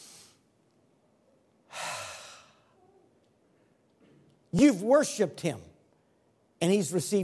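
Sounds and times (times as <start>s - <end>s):
voice imitating a deep inhale: 1.7s - 2.8s
speech: 4.5s - 5.7s, 6.6s - 7.2s.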